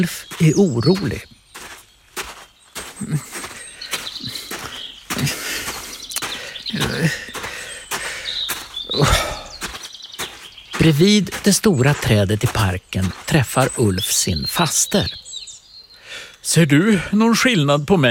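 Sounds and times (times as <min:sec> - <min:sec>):
speech: 0:00.0 - 0:01.4, 0:03.0 - 0:03.4, 0:10.8 - 0:15.2, 0:16.5 - 0:18.0
footsteps passing outdoors: 0:00.0 - 0:14.2
birds chirping and tweeting on a sunny day: 0:00.0 - 0:18.0.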